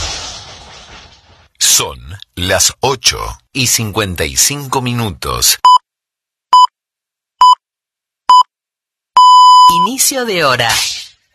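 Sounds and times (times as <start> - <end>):
speech: 1.8 - 5.8, 9.9 - 11.0
hourly time signal beeps: 9.2 - 10.0.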